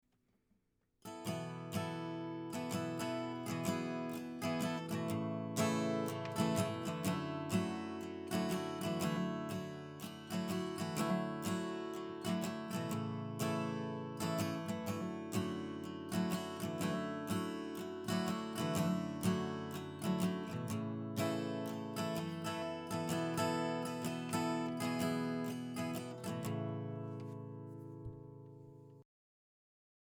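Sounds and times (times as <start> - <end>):
guitar recorded with Razer Seiren Mini microphone: 1.0 - 29.0.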